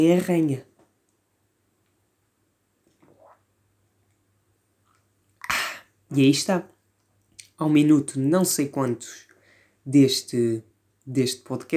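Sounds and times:
speech: 0:00.0 - 0:00.7, 0:06.1 - 0:06.7, 0:07.6 - 0:09.2, 0:09.8 - 0:11.7
person sipping a drink of water: 0:02.9 - 0:03.5.

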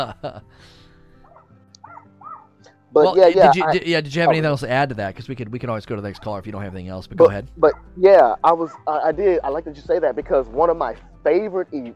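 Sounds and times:
laughter: 0:00.0 - 0:00.5, 0:03.1 - 0:04.4
speech: 0:00.0 - 0:00.8, 0:02.9 - 0:11.9
neighbor's dogs barking: 0:01.2 - 0:02.6, 0:06.0 - 0:06.7, 0:07.5 - 0:09.2.

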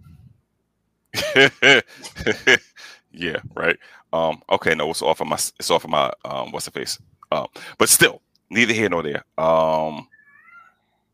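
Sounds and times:
laughter: 0:01.2 - 0:02.9
speech: 0:01.3 - 0:02.6, 0:03.2 - 0:10.1
cat meowing: 0:10.1 - 0:10.8.

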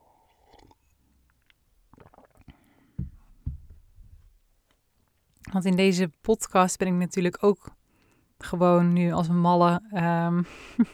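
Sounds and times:
sipping and swallowing of water: 0:00.0 - 0:04.2
speech: 0:05.5 - 0:07.8, 0:08.4 - 0:10.9.

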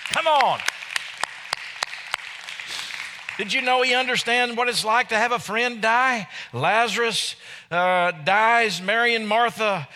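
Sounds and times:
scattered applause filling a large room: 0:00.0 - 0:03.8
audience clapping in a steady rhythmic beat: 0:00.0 - 0:04.3
speech: 0:00.2 - 0:00.8, 0:03.4 - 0:09.9.

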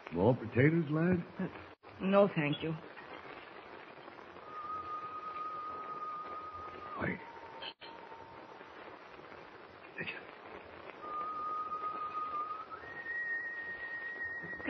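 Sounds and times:
constant hissing background: 0:00.0 - 0:14.6
speech: 0:00.1 - 0:03.0
person whistling outside on deck: 0:04.4 - 0:08.0, 0:11.0 - 0:14.6.

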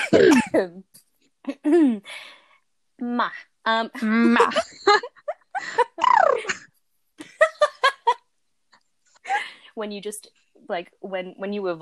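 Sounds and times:
throat-clearing before singing: 0:00.0 - 0:00.6
person coughing with a tight throat: 0:00.0 - 0:00.7
speech: 0:00.1 - 0:02.4, 0:03.0 - 0:06.7, 0:09.8 - 0:11.7.

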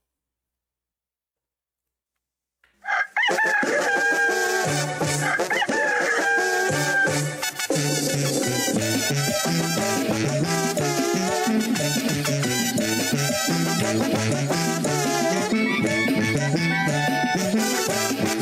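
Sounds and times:
rooster crowing: 0:02.8 - 0:07.5
busy full musical backing: 0:03.8 - 0:18.4.

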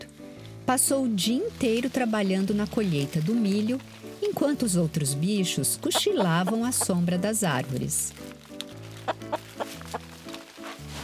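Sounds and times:
speech: 0:00.7 - 0:08.4
hen clucking: 0:05.7 - 0:07.1, 0:09.0 - 0:10.1.

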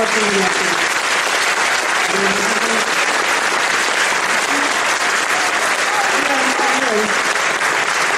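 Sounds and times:
sustained applause from a large audience: 0:00.0 - 0:08.1
speech: 0:00.1 - 0:00.9, 0:02.1 - 0:02.9.

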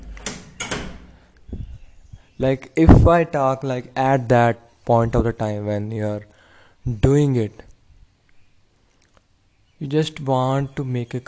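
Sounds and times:
door being pushed shut: 0:00.0 - 0:01.8
speech: 0:02.4 - 0:07.7, 0:09.8 - 0:11.2.

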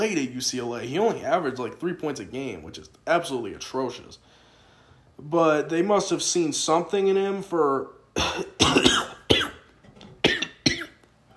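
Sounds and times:
speech: 0:00.0 - 0:04.3, 0:05.2 - 0:09.0
harsh coughing fit with raspy wheeze: 0:08.2 - 0:09.6, 0:10.2 - 0:11.0.

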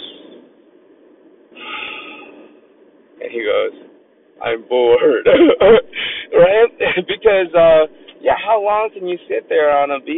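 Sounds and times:
voice imitating a man breathing deeply: 0:01.6 - 0:02.6, 0:05.9 - 0:06.3
speech: 0:03.2 - 0:10.1.

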